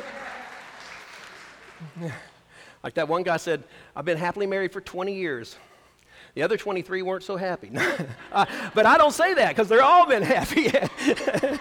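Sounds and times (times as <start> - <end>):
audience applauding for a woman married 43 years: 0.0 - 2.3
speech: 1.8 - 11.5
laughter: 7.8 - 11.5.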